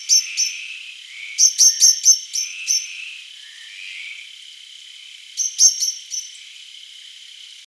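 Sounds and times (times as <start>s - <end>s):
common blackbird Turdus merula giving clicking chink calls: 0.0s - 4.4s, 5.0s - 6.7s.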